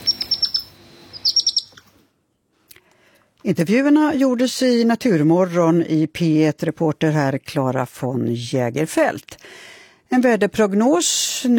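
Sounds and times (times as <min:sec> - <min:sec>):
young European hedgehog high-pitched peeps: 0:00.0 - 0:01.9
speech: 0:03.4 - 0:11.5.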